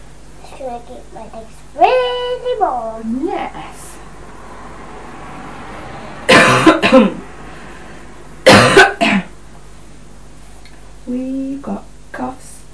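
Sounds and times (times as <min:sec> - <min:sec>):
speech: 0:00.6 - 0:03.9, 0:06.9 - 0:07.3
coughing: 0:06.3 - 0:07.2, 0:08.4 - 0:09.4.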